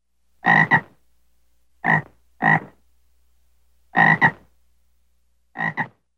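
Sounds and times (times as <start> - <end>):
bullfrog calling: 0.4 - 1.0, 1.8 - 2.8, 3.9 - 4.5, 5.6 - 6.0.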